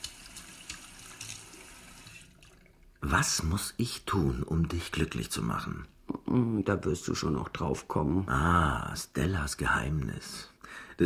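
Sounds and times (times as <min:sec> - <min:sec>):
cold tap water running while rinsing a fish: 0:00.0 - 0:03.1
speech: 0:03.1 - 0:11.0.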